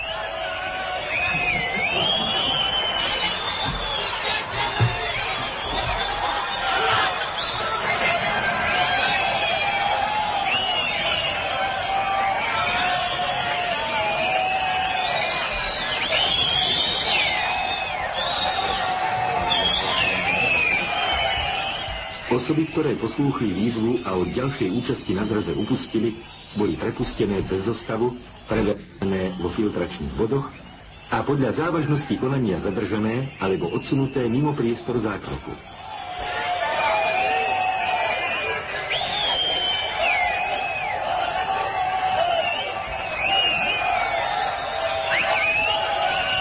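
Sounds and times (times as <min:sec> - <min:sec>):
loud yells: 0:00.0 - 0:26.0, 0:35.6 - 0:46.3
large crowd shouting during police intervention: 0:00.0 - 0:26.8, 0:35.1 - 0:46.3
speech: 0:22.5 - 0:35.7.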